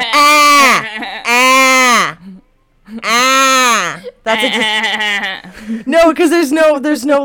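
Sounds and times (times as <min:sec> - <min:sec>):
person imitating a bleating goat, sheep-like: 0:00.0 - 0:02.2, 0:03.0 - 0:05.4
speech: 0:04.3 - 0:07.2.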